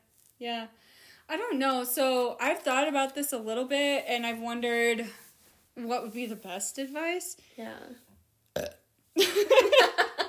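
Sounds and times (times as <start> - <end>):
speech: 0.4 - 5.2, 5.8 - 10.2
loud rumbling burp: 8.6 - 8.8.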